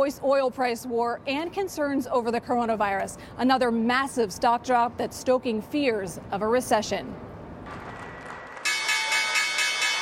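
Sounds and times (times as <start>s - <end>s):
speech: 0.0s - 7.3s
stock exchange closing bell on Wall Street ringing: 8.6s - 9.9s.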